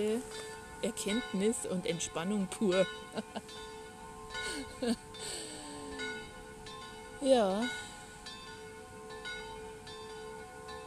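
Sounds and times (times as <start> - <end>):
speech: 0.0 - 5.5, 7.2 - 7.8
church bells ringing: 0.0 - 10.8
laughter: 3.2 - 3.4, 4.5 - 5.0.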